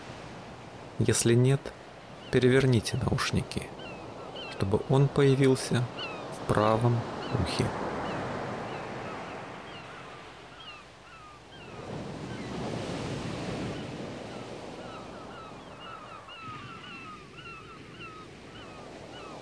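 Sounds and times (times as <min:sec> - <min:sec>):
sea waves washing in: 0:00.0 - 0:19.3
speech: 0:01.0 - 0:03.8, 0:04.6 - 0:07.9
many small birds chirping and calling: 0:01.7 - 0:12.6, 0:13.6 - 0:19.3.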